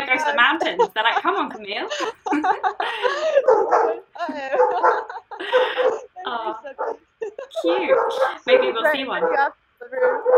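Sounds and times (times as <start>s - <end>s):
laughter: 0.0s - 9.2s
speech: 0.2s - 5.6s, 7.8s - 10.1s
dogs barking and yipping: 3.1s - 10.3s.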